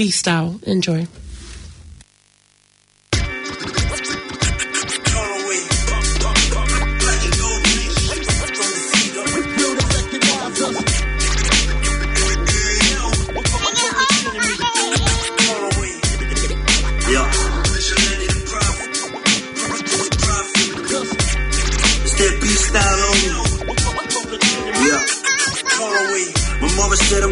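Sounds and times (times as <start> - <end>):
speech: 0.0 - 1.2
turntable scratching in a hip-hop instrumental: 1.0 - 27.3
punchy hip-hop beat: 3.1 - 27.3
heavy bass notes pulsing in repeating blocks: 5.7 - 8.5, 9.3 - 13.7, 16.0 - 18.8, 21.2 - 24.1, 26.4 - 27.3.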